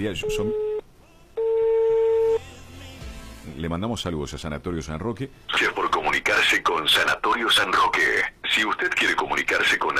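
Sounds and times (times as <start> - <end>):
speech: 0.0 - 0.7, 3.6 - 9.9
telephone ringing tone as a call is placed: 1.4 - 2.4.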